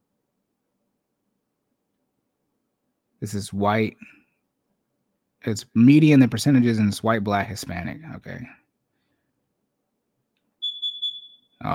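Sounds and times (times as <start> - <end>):
speech: 3.2 - 4.2, 5.4 - 8.6, 11.6 - 11.7
electronic smoke alarm tone: 10.6 - 11.6.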